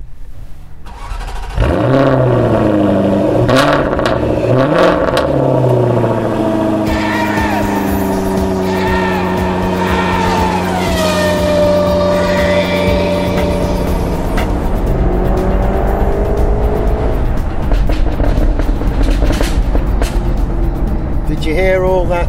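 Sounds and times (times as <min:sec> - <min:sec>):
sports car engine revving: 0:00.9 - 0:21.3
sports car exhaust pops and crackles: 0:03.4 - 0:06.5, 0:16.9 - 0:22.2.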